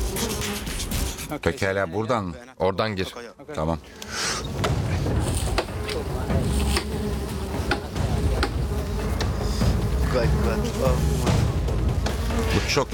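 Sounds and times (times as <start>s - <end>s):
many agitated bees buzzing and swarming around a hive: 0.0s - 0.9s, 4.0s - 12.9s
speech: 1.3s - 4.7s, 10.1s - 11.6s, 12.4s - 12.9s.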